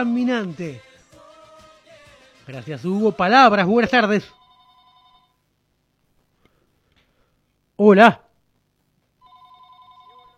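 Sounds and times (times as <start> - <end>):
speech: 0.0 - 0.9, 2.5 - 4.4, 7.8 - 8.2
steady electronic phone ringing tone: 4.2 - 5.4, 9.2 - 10.3.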